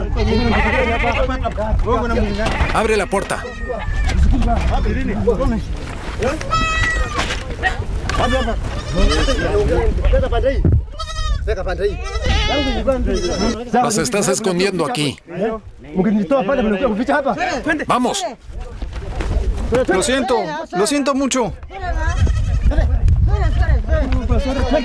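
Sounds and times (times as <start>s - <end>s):
many goats bleating in a pen: 0.0s - 1.5s, 2.1s - 5.2s, 6.4s - 10.2s, 10.9s - 13.7s, 21.9s - 22.7s, 23.4s - 24.8s
speech: 0.2s - 7.0s, 7.6s - 10.7s, 11.4s - 18.6s, 19.7s - 22.9s, 24.4s - 24.8s.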